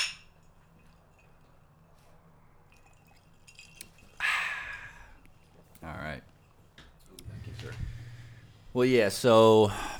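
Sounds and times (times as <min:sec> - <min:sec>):
glasses clinking in a toast: 0:00.0 - 0:01.7, 0:02.7 - 0:04.9
speech: 0:08.8 - 0:09.9.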